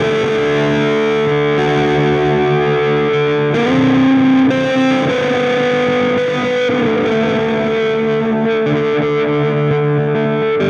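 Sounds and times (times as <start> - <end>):
indie rock guitar: 0.0 - 10.6.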